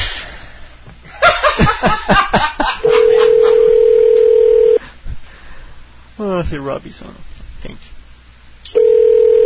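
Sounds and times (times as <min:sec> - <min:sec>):
rhythmic laughter: 0:01.1 - 0:03.8
loud telephone dial tone: 0:03.3 - 0:04.8, 0:08.7 - 0:09.4
speech: 0:06.5 - 0:08.0.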